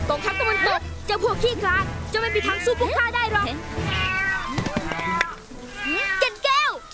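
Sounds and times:
cat meowing: 0:00.1 - 0:00.8, 0:02.2 - 0:02.9, 0:03.8 - 0:06.9
speech: 0:01.1 - 0:04.2.

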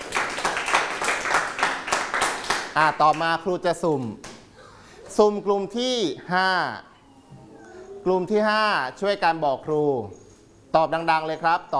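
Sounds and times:
students clapping in a classroom: 0:00.0 - 0:04.4
speech: 0:02.8 - 0:04.2, 0:05.2 - 0:06.9, 0:08.0 - 0:11.7.

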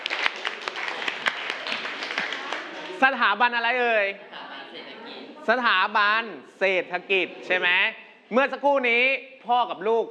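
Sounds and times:
classroom of students clapping their hands: 0:00.0 - 0:03.0
speech: 0:03.0 - 0:10.0.

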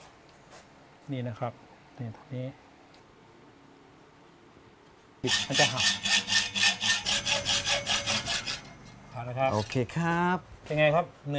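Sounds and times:
speech: 0:01.1 - 0:02.7, 0:05.2 - 0:06.2, 0:09.2 - 0:11.3
hand saw cutting through a steel bar for a handmade vehicle frame: 0:05.2 - 0:09.8.

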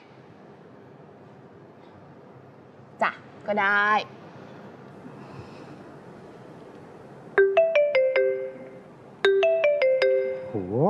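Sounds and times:
speech: 0:03.0 - 0:04.2
phone electronic ringtone melody on an outgoing call: 0:07.4 - 0:10.7.

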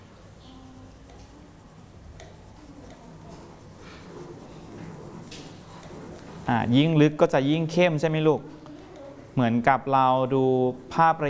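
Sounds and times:
sheet of paper shifted across a surface, rustling and scraping: 0:03.3 - 0:06.5
speech: 0:06.5 - 0:08.6, 0:09.4 - 0:11.2.

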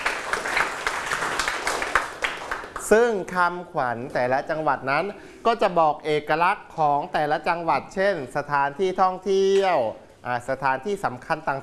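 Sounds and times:
children clapping in a classroom: 0:00.0 - 0:03.0
speech: 0:02.9 - 0:11.6.

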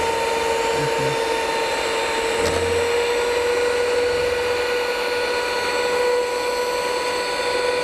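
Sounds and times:
blender mixing deodorizer dissolved in water: 0:00.0 - 0:07.8.

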